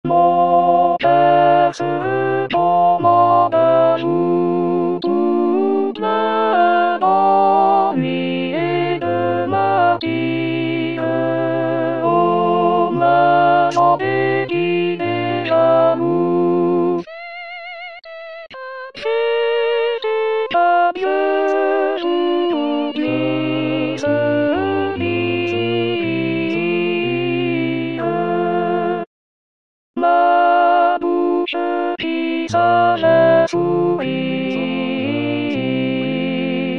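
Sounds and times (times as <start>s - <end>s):
viola playing: 0.1s - 29.1s, 30.0s - 36.7s.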